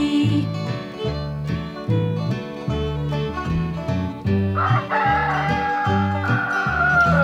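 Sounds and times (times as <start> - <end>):
bouncy rhythmic instrumental music with a steady thumping bass line: 0.0 - 7.2
rooster crowing: 4.6 - 7.2.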